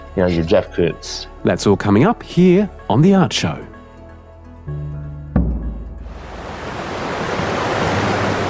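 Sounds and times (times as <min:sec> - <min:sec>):
speech: 0:00.2 - 0:03.7
thud: 0:05.4 - 0:06.1
water thundering through a river dam at a large hydroelectric power station in Latin America: 0:06.1 - 0:08.4.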